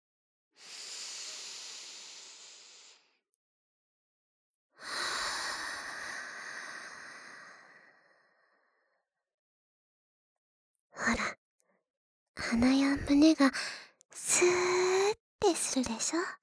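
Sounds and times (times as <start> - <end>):
slow breathing in and out: 0.6 - 3.2, 4.8 - 8.9
speech: 11.0 - 11.4, 12.4 - 16.4.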